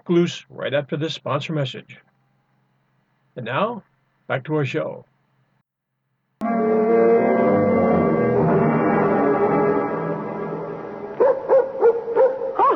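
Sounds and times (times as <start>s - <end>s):
speech: 0.0s - 2.1s, 3.4s - 5.1s
droning tonal wail: 6.4s - 11.2s
dog barking: 11.2s - 12.7s.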